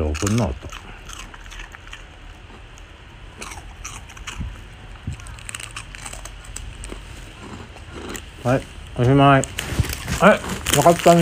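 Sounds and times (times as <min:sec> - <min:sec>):
speech: 0:00.0 - 0:00.7, 0:08.4 - 0:09.6, 0:10.2 - 0:11.2
chewing a crunchy rice cracker (senbei): 0:00.0 - 0:08.6, 0:09.4 - 0:11.2
steady low hiss: 0:00.0 - 0:11.2.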